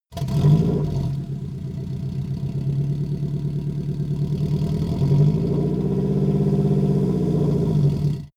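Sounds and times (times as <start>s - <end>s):
VW T1 engine starting: 0.1s - 8.3s.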